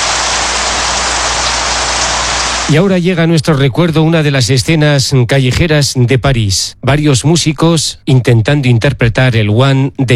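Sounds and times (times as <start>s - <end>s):
heavy rain pouring down: 0.0s - 2.8s
speech: 2.7s - 10.1s.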